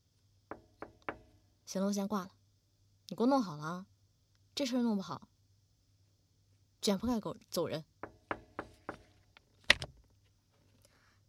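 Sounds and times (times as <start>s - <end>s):
sharp knocks on a door: 0.5s - 1.4s, 8.0s - 9.1s
speech: 1.7s - 2.4s, 3.1s - 3.9s, 4.6s - 5.3s, 6.8s - 7.9s.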